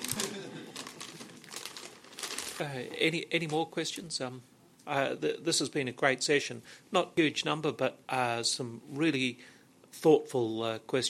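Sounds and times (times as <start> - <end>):
paper bag crinkling and rustling: 0.0 - 3.6
speech: 2.6 - 11.0.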